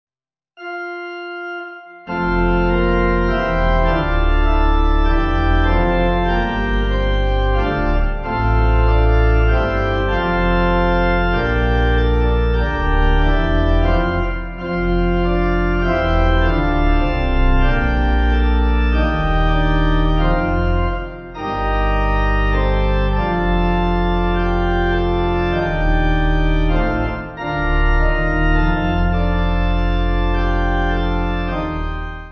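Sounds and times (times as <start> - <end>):
pipe organ piece: 0.6 - 32.3.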